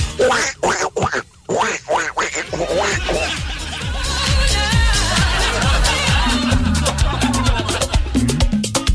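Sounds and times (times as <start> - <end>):
duck quacking: 0.0 - 3.8
laughter: 1.6 - 8.5.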